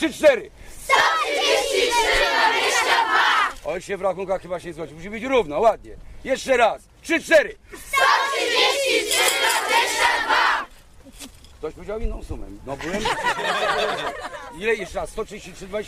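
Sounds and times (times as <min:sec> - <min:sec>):
speech: 0:00.0 - 0:10.6, 0:11.2 - 0:15.8
large crowd of school students shouting a number in unison: 0:00.8 - 0:03.6, 0:07.8 - 0:10.7
laughter: 0:12.8 - 0:15.1.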